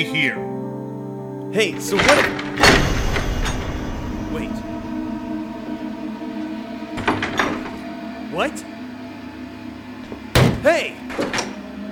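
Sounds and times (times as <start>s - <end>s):
speech: 0.0s - 0.6s, 1.5s - 2.9s, 4.3s - 4.7s, 8.4s - 8.7s, 10.6s - 11.2s
steady low humming drone: 1.7s - 10.4s
door handle jiggled on a door locked from the outside: 1.8s - 5.8s, 7.0s - 7.9s, 10.1s - 11.7s.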